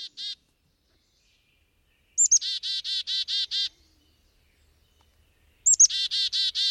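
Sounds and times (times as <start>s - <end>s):
black-capped chickadee calling: 0.0s - 0.4s, 2.2s - 3.8s, 5.6s - 6.6s.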